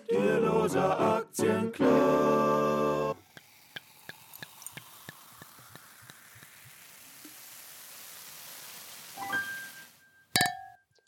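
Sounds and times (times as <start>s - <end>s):
speech: 0.2s - 1.9s
Sekt sparkling wine fizzing with little pops and crackles: 3.1s - 10.8s
Sekt glasses clinking together in a toast: 9.2s - 11.0s.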